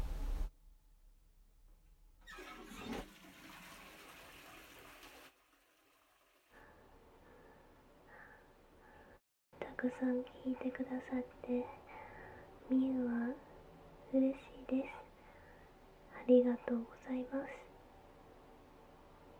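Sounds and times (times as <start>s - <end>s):
toilet flushing: 2.2s - 6.6s
speech: 9.8s - 11.8s, 12.7s - 13.5s, 14.1s - 15.0s, 16.2s - 17.7s.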